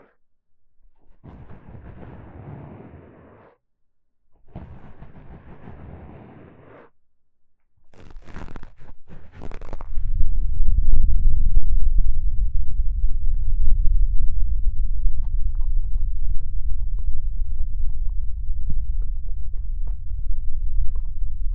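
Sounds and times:
deep ear cupping: 7.9 - 21.5
intense bass: 8.0 - 21.5.

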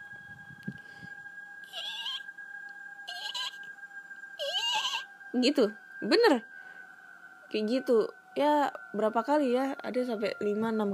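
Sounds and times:
faint steady hum: 0.0 - 10.9
voice imitating a very soft eerie laugh: 1.7 - 2.3, 3.1 - 3.7, 4.4 - 5.1
speech: 5.4 - 6.5, 7.5 - 10.9.

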